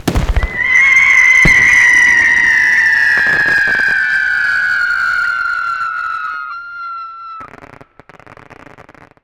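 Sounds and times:
glitch screamers: 0:00.4 - 0:07.5.

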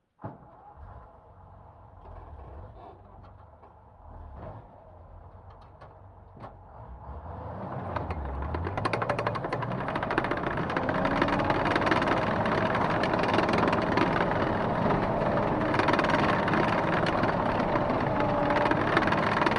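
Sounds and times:
M10 tank starting, driving fast and stopping, heard onboard: 0:00.2 - 0:19.5.

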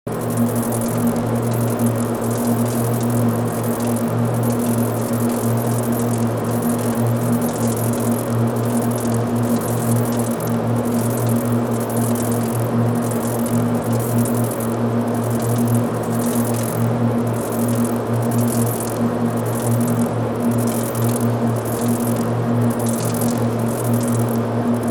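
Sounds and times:
sci-fi circuits ambience: 0:00.1 - 0:24.9.

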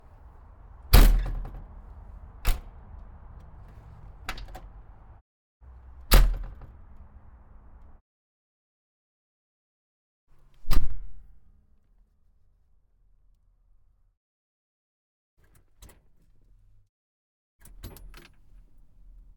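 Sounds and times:
Volvo L90 wheel loader door: 0:00.0 - 0:05.2.

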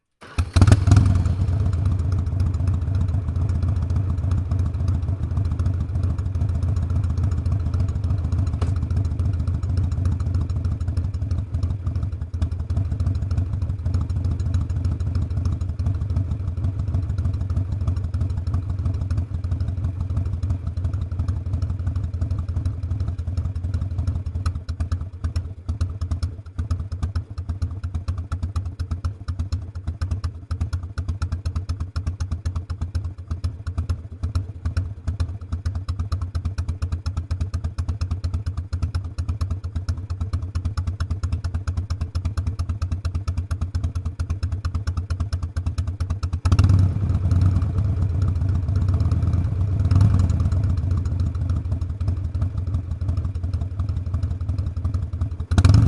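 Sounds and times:
Harley motorcycle starting: 0:00.2 - 0:19.2, 0:39.0 - 0:55.8
Harley motorcycle idling: 0:00.2 - 0:55.8.

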